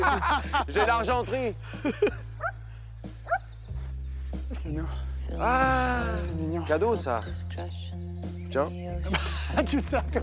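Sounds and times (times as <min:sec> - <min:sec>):
laughter: 0:00.0 - 0:02.6, 0:09.0 - 0:10.2
speech: 0:00.1 - 0:02.3, 0:04.6 - 0:10.2
dog barking: 0:02.4 - 0:02.6, 0:03.2 - 0:03.5.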